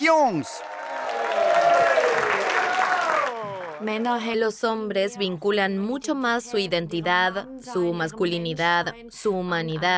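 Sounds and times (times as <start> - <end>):
audience applause for a comedian at a comedy show: 0.0 - 4.2
crowd noise: 0.0 - 4.8
speech: 0.1 - 0.8, 3.8 - 9.9.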